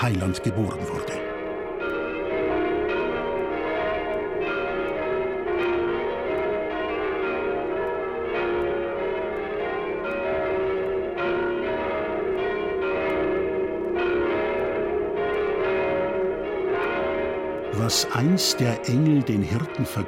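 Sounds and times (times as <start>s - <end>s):
speech: 0.0s - 1.2s, 17.9s - 20.0s
church bells pealing: 0.0s - 20.0s.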